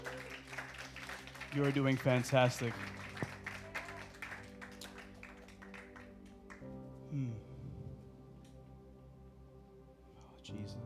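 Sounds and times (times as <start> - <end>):
small group clapping: 0.0 - 6.9
speech: 1.5 - 3.0.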